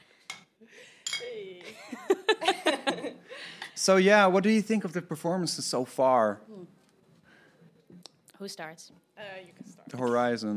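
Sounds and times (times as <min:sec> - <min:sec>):
beer glasses clinking in a toast: 0:00.3 - 0:01.3
laughter: 0:01.6 - 0:03.7
speech: 0:03.8 - 0:06.8, 0:08.4 - 0:10.5.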